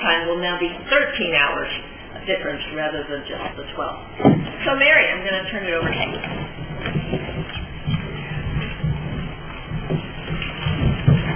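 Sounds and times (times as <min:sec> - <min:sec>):
speech: 0:00.2 - 0:07.2
shuffling, rustling and creaking of a person getting up out of a chair: 0:03.0 - 0:11.3.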